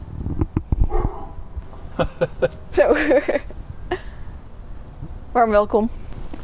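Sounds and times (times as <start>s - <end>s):
low rumble: 0.0s - 6.4s
dog barking: 0.9s - 1.4s
laughter: 1.8s - 4.1s
speech: 2.0s - 3.5s, 5.4s - 6.0s.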